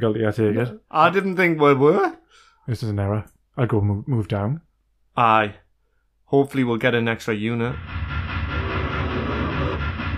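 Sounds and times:
speech: 0.0 - 5.6, 6.3 - 8.1
train running on rails: 7.8 - 10.1.

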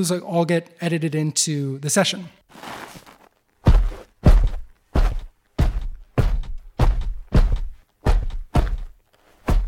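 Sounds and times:
speech: 0.0 - 2.8
heavy booming footsteps of a Spartan built from layered sampler sounds: 3.6 - 9.6.

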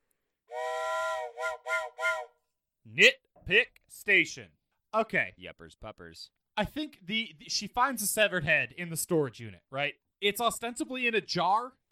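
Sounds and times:
steam train whistle: 0.5 - 2.4
speech: 2.2 - 11.8.

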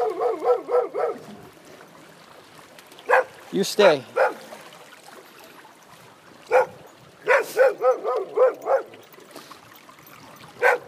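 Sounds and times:
dog barking: 0.0 - 1.2, 3.1 - 3.3, 4.1 - 4.4, 6.5 - 8.9, 10.6 - 10.8
speech: 3.5 - 4.1.

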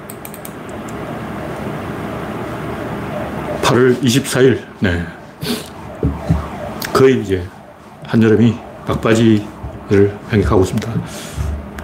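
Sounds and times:
electric fan whirring: 0.0 - 11.8
speech: 3.7 - 5.5, 7.0 - 11.4.

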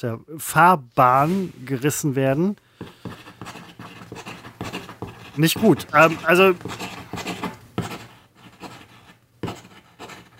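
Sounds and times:
speech: 0.0 - 3.0, 5.4 - 6.9
pen writing vigorously on paper: 2.8 - 10.3.

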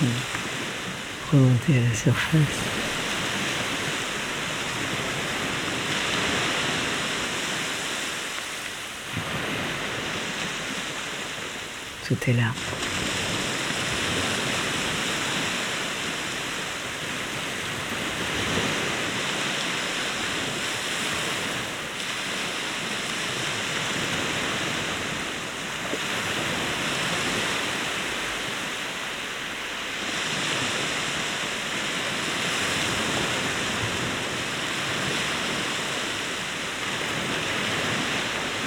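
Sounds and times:
ocean surf waves breaking: 0.0 - 38.6
speech: 1.3 - 2.8, 12.1 - 12.9.

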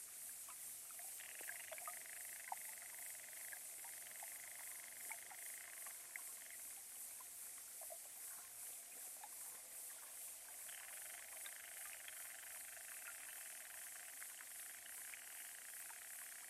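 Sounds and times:
underwater fizz of fine clicks and crackles in a small pond: 0.5 - 6.6, 10.0 - 16.1
sharp underwater ticks and pops: 0.5 - 16.4.

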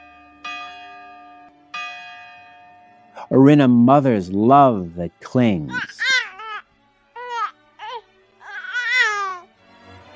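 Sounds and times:
morning church bell ringing: 0.0 - 4.9
speech: 3.2 - 6.0.

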